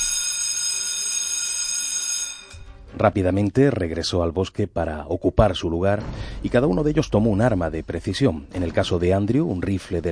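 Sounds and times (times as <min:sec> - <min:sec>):
school fire alarm ringing: 0:00.0 - 0:02.8
speech: 0:03.0 - 0:10.0.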